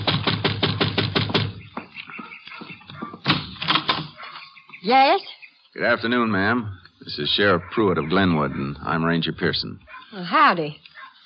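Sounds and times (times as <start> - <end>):
knocking on a door: 0.0 - 1.9
speech: 4.8 - 10.8.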